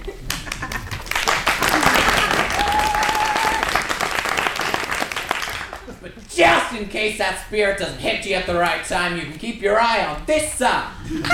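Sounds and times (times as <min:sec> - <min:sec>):
studio audience applause: 0:00.2 - 0:06.0
speech: 0:06.4 - 0:11.3.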